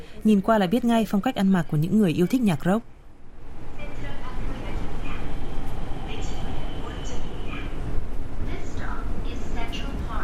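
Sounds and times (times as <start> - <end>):
low rumble of a subway train in motion: 0.0 - 10.2
speech: 0.2 - 2.9
faint indistinct voices of passengers murmuring: 3.8 - 10.2.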